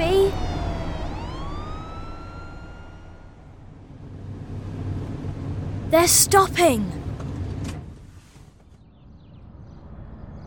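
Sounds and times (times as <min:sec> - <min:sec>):
fire engine siren wailing: 0:00.0 - 0:03.9
low rumble of van engine and road noise: 0:00.0 - 0:10.4
speech: 0:05.9 - 0:07.0.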